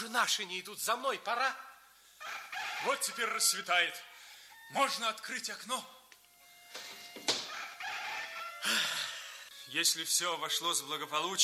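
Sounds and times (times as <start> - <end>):
speech: 0.2 - 4.1, 4.7 - 6.0, 8.6 - 8.9, 9.7 - 11.4
rooster crowing at dawn: 2.2 - 4.7, 7.3 - 9.6.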